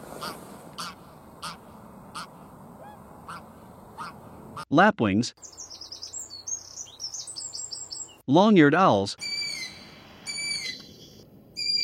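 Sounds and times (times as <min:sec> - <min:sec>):
greylag geese calling at Curonian Spit National Park: 0:00.1 - 0:04.7
speech: 0:04.7 - 0:05.6, 0:08.3 - 0:09.2.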